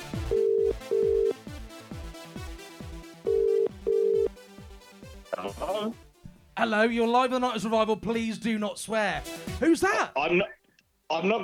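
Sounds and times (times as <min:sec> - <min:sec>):
thumping music beat: 0:00.0 - 0:06.6, 0:09.1 - 0:09.8
telephone ringing with electronic tones: 0:00.2 - 0:01.4, 0:03.3 - 0:04.3
speech: 0:05.8 - 0:06.0, 0:06.6 - 0:11.4.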